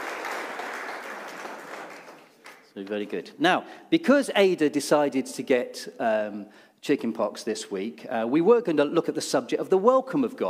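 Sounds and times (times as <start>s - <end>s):
church audience applauding: 0.0s - 2.7s
speech: 2.8s - 10.4s.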